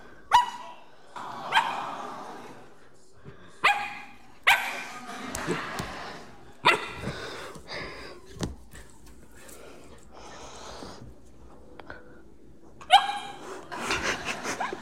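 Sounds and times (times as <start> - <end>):
puppy barking: 0.3 - 0.8, 3.6 - 4.9, 6.6 - 7.0, 12.8 - 13.4
laughter: 4.6 - 8.2, 13.4 - 14.8.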